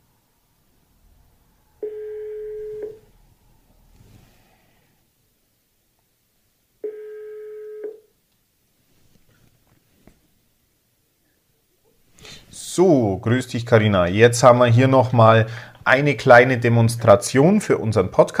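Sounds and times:
phone ringback tone of a call placed through a smart speaker to a mobile phone: 1.8s - 3.1s, 6.8s - 8.1s
speech: 12.8s - 18.3s.

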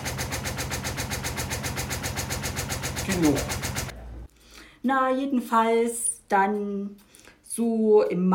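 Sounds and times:
washer-dryer running its spin cycle: 0.0s - 4.0s
speech: 3.1s - 3.6s, 4.8s - 7.0s, 7.6s - 8.3s.

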